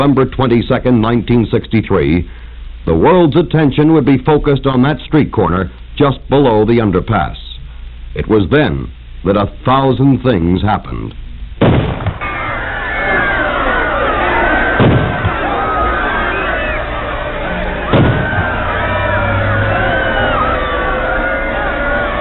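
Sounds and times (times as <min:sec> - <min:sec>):
speech: 0:00.0 - 0:07.4, 0:08.1 - 0:11.8
sharp heavy bangs of gunshots: 0:11.6 - 0:22.1
large panicked crowd screaming at a street corner below an underpass: 0:12.2 - 0:22.1.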